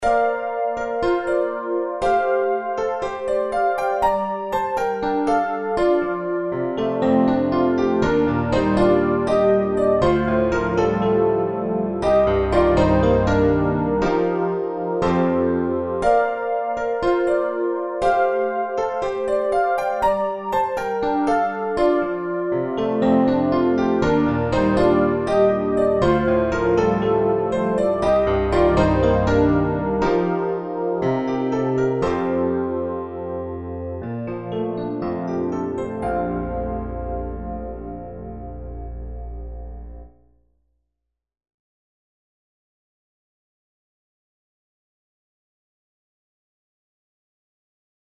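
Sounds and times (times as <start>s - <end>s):
layered piano: 0.0s - 40.5s.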